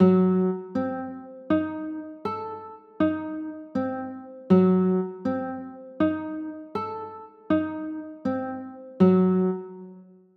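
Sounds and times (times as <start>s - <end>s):
A diminished seventh chords: 0.0s - 10.0s.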